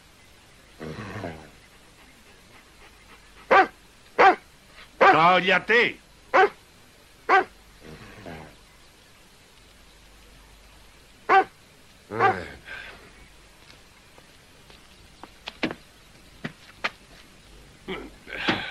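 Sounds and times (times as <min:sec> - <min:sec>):
dog barking in short sharp bursts: 0:03.5 - 0:04.4, 0:05.0 - 0:05.2, 0:06.3 - 0:06.6, 0:07.3 - 0:07.5, 0:11.3 - 0:11.5, 0:12.2 - 0:12.5
dog yipping softly: 0:03.5 - 0:04.4, 0:07.3 - 0:07.5, 0:11.3 - 0:11.5
speech: 0:05.2 - 0:06.6.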